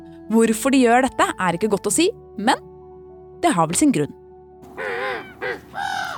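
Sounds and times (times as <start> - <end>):
speech: 0.3 - 2.7, 3.4 - 4.2
crow cawing: 4.7 - 6.1.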